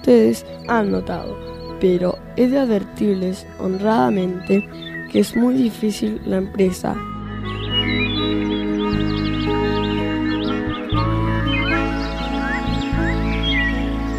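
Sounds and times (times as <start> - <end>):
speech: 0.0 - 7.1
chorus of many birds trilling and chirping: 0.0 - 14.1.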